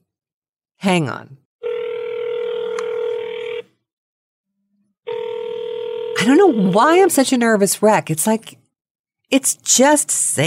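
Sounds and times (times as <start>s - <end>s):
speech: 0.8s - 1.4s, 6.2s - 8.6s, 9.3s - 10.4s
telephone ring tone on an outgoing call: 1.6s - 3.7s, 5.1s - 6.8s.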